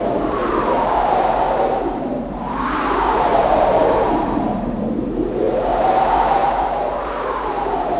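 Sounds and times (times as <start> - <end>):
wind: 0.0 - 7.9.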